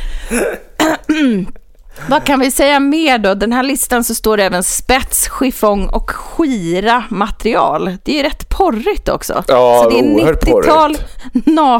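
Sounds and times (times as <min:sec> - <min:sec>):
person with COVID coughing: 0:00.2 - 0:02.4
speech: 0:00.3 - 0:11.7.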